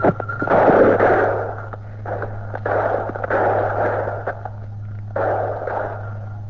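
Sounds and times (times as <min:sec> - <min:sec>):
rushing noise: 0:00.0 - 0:06.4
steady electrical hum: 0:00.0 - 0:06.4
gunshots during police shootout: 0:00.5 - 0:04.4, 0:05.2 - 0:06.2.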